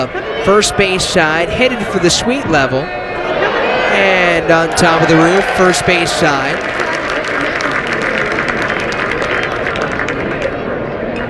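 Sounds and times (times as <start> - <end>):
speech: 0.0 - 3.0, 4.0 - 6.8
ballpark crowd roaring at a night college baseball game: 0.0 - 9.7
scattered clapping and cheering of a baseball crowd: 4.6 - 11.2.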